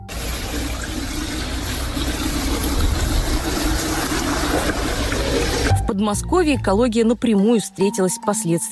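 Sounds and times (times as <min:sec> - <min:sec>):
water running from a tap in a flood-affected area in Russia: 0:00.0 - 0:05.8
speech: 0:06.0 - 0:08.7.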